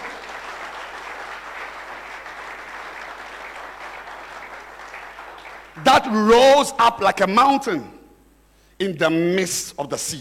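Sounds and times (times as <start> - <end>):
audience clapping hands: 0.0 - 6.2
speech: 5.8 - 8.0, 8.8 - 10.1.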